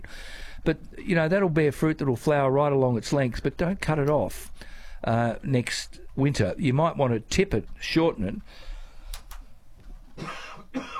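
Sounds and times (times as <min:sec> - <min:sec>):
speech: 0:00.6 - 0:08.7
throat clearing cough: 0:10.2 - 0:10.9.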